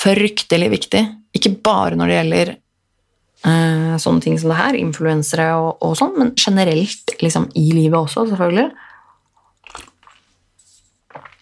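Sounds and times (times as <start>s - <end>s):
speech: 0.0s - 2.6s, 3.4s - 8.9s
coffee being sipped quietly: 9.2s - 11.4s.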